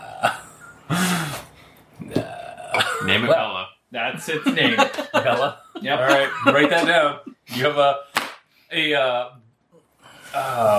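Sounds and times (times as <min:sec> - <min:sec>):
person's voice imitating the croak of a giant salamander: 0:00.0 - 0:00.4, 0:02.0 - 0:02.8
speech: 0:03.1 - 0:08.1, 0:08.7 - 0:09.4, 0:10.3 - 0:10.7
laughter: 0:04.2 - 0:07.5.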